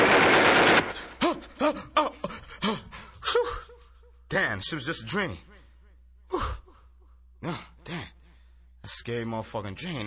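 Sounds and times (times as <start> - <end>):
machine gun burst of rapid gunfire: 0.0 - 1.2
speech: 4.4 - 5.5, 6.3 - 6.6, 7.4 - 7.7, 8.9 - 10.0.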